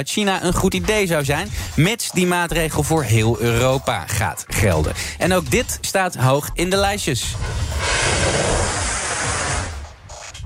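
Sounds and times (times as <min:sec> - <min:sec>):
speech: 0:00.0 - 0:08.7
dense barrage of fireworks exploding: 0:07.4 - 0:09.8.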